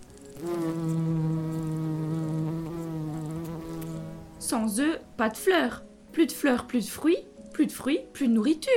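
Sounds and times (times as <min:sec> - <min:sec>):
bee buzzing: 0:00.0 - 0:04.8
speech: 0:04.5 - 0:08.7.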